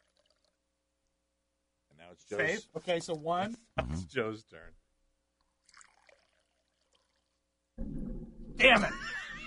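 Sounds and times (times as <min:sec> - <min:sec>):
water pouring from a spigot into a bottle: 0:00.0 - 0:00.6, 0:05.4 - 0:08.5
speech: 0:02.1 - 0:04.8, 0:08.6 - 0:09.2
laughter: 0:08.7 - 0:09.4.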